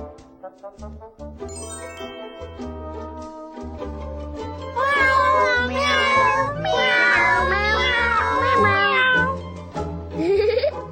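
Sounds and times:
speech: 0.6 - 1.6
cat meowing loudly: 4.8 - 9.4
laughter: 10.2 - 10.9.

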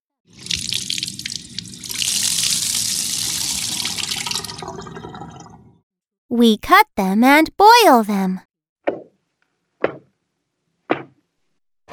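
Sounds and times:
water running while washing potatoes: 0.3 - 5.8
speech: 6.3 - 9.0.

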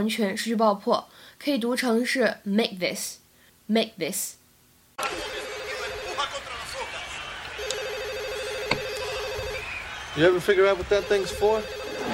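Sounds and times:
speech: 0.0 - 4.4, 5.0 - 5.4, 10.2 - 12.1
telephone ringing in warbling bursts: 5.0 - 6.9, 7.5 - 12.1.

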